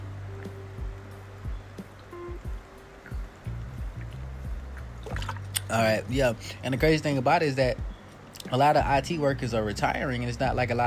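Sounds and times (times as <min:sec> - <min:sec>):
low hum: 0:00.0 - 0:10.8
soft gulps of drinking water during a water break: 0:04.0 - 0:05.8
speech: 0:05.7 - 0:07.8, 0:08.5 - 0:10.8.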